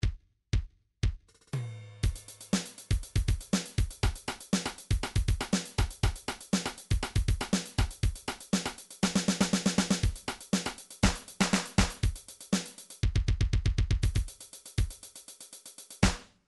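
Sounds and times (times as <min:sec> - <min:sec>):
MIDI drums: 0:00.0 - 0:16.3
beatbox drums: 0:02.0 - 0:16.3.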